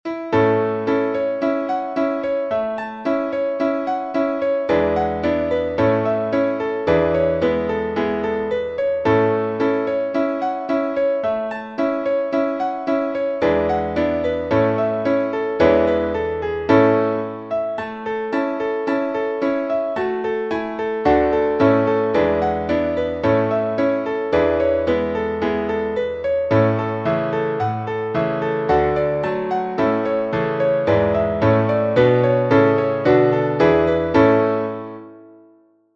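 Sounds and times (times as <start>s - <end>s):
piano playing an eightsome reel: 0.1s - 35.6s.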